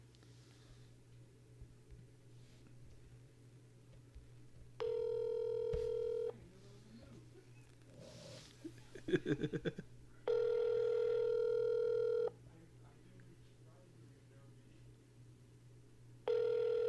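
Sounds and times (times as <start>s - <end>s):
faint low hum: 0.0s - 16.8s
telephone ring tones: 4.8s - 6.3s, 10.3s - 12.3s, 16.2s - 16.8s
laughter: 8.6s - 9.9s
speech: 9.2s - 9.9s.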